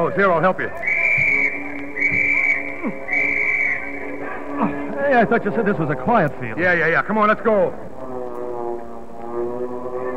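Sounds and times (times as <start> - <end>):
speech: 0.0 - 1.0, 4.6 - 7.9
Stuka dive bombers and Dornier bombers with escort aircraft droning: 0.0 - 10.1
laughter: 0.4 - 6.5.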